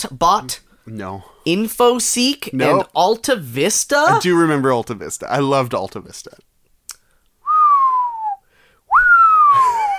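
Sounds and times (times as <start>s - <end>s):
speech: 0.0s - 6.5s
person whistling the falling sound of a rock dropped down a hole: 7.4s - 9.9s.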